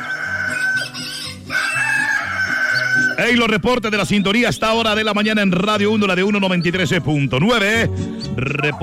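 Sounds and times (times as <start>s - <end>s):
rooster crowing loudly on the radio: 0.0s - 3.3s
speech: 3.2s - 8.8s.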